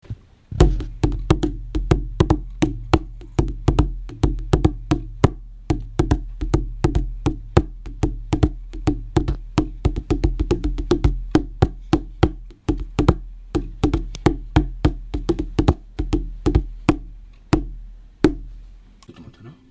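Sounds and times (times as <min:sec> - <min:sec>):
kamitaiko drum: 0:00.6 - 0:17.0.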